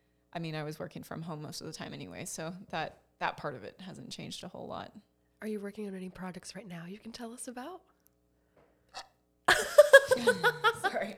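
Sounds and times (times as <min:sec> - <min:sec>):
speech: 0:00.3 - 0:07.9, 0:10.2 - 0:11.1
tiny soft burp: 0:08.9 - 0:09.2
person laughing: 0:09.5 - 0:11.1.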